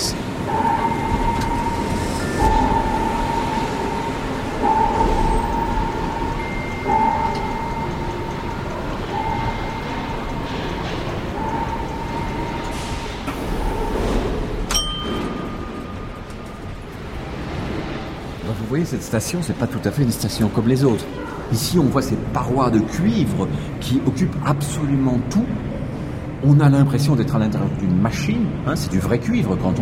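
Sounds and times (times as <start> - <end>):
tonal whine from metro train wheels or motors: 0.0 - 18.8
metro train rumbling at an underground platform of metro line 11: 0.0 - 29.8
speech: 18.8 - 25.7, 26.4 - 29.8.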